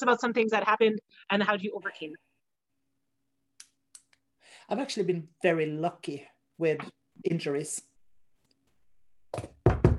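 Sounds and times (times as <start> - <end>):
speech: 0.0 - 2.3, 4.7 - 7.9, 9.3 - 9.6
hollow knocking on wood: 9.3 - 9.9.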